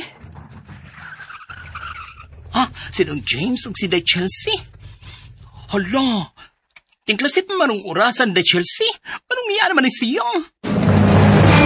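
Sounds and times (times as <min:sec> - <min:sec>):
motor vehicle arriving, engine and road noise with whining tone: 0:00.0 - 0:06.2
speech: 0:02.6 - 0:04.8, 0:05.7 - 0:06.5, 0:07.1 - 0:10.6.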